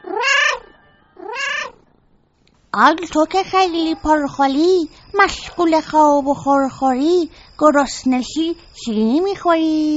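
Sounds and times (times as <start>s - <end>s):
cat meowing: 0.0s - 1.9s
speech: 2.8s - 9.9s.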